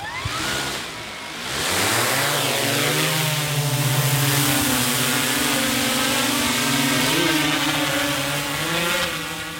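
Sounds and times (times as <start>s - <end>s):
drone propeller whine lifting off: 0.0s - 9.5s.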